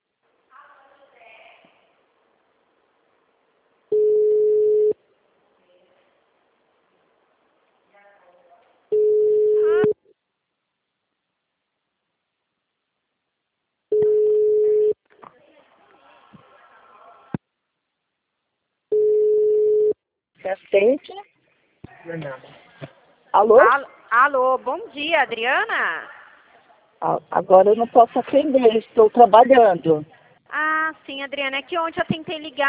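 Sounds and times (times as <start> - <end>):
telephone ringback tone on an unanswered call: 4.0 - 5.0, 8.9 - 9.9, 13.9 - 14.9, 18.9 - 19.9
speech: 20.5 - 21.3, 22.0 - 26.1, 27.0 - 32.6.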